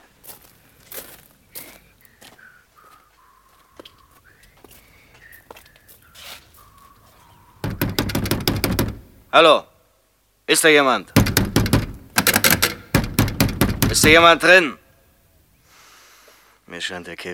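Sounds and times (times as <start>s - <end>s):
shuffling: 0.0s - 9.3s
scattered taps: 7.6s - 9.0s, 11.2s - 14.4s
knocking on the front door of a pavilion: 7.6s - 9.1s, 11.2s - 14.4s
speech: 9.3s - 9.7s, 10.5s - 11.2s, 14.0s - 14.8s, 16.8s - 17.3s.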